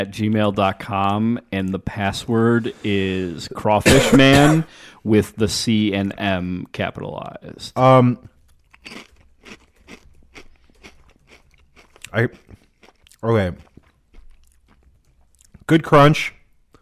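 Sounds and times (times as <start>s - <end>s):
speech: 0.0s - 9.6s, 12.1s - 12.5s, 13.2s - 13.7s, 15.7s - 16.4s
person chewing crunchy spicy chips: 8.2s - 15.6s.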